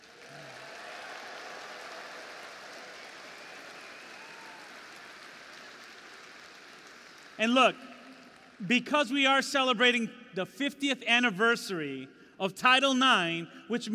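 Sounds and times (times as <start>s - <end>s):
large audience applauding students who won state competitions: 0.0s - 8.6s
speech: 7.4s - 7.9s, 8.6s - 13.9s.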